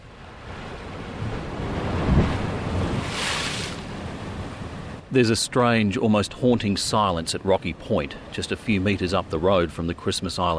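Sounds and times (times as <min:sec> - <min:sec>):
waves crashing against a rocky sea cliff face: 0:00.0 - 0:10.5
gusty wind buffeting the microphone: 0:00.3 - 0:05.0
speech: 0:05.1 - 0:10.5.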